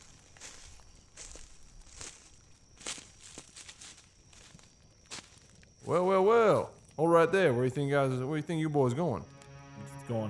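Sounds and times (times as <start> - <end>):
footsteps crunching over soft rustling ground: 0.0 - 5.9
speech: 5.9 - 9.3, 10.1 - 10.2.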